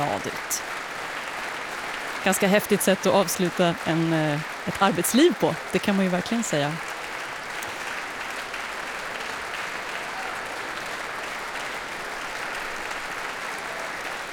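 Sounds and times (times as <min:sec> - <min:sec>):
large concert audience applause for an orchestra violinist: 0:00.0 - 0:14.3
speech: 0:00.1 - 0:00.8, 0:02.2 - 0:06.9.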